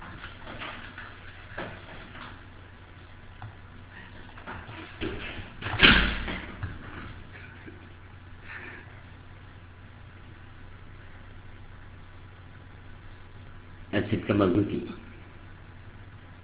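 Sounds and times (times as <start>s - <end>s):
door shutting with a solid thud: 5.0s - 7.0s
speech: 14.0s - 15.1s.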